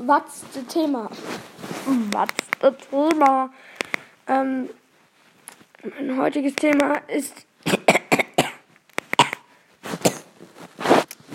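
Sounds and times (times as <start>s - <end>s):
speech: 0.0s - 4.8s, 5.8s - 7.8s
person coughing: 7.7s - 8.6s, 9.2s - 10.3s.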